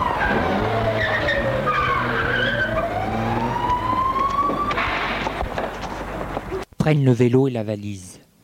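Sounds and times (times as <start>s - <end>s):
police car tires skidding: 0.0s - 6.6s
police car engine rumbling: 0.0s - 6.7s
speech: 6.8s - 8.2s.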